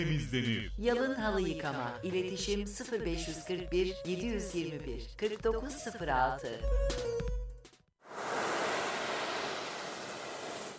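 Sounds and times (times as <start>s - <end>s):
speech: 0.0s - 7.0s
sea waves washing onto a beach: 8.1s - 10.7s.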